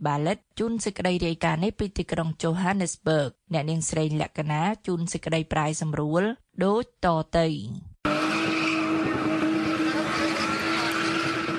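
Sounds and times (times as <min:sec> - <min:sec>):
speech: 0:00.0 - 0:07.9
car engine roar during a spinning motorsport event in South Africa: 0:08.0 - 0:11.5
tyres squealing on a car spinning fast in tight circles: 0:08.1 - 0:11.5.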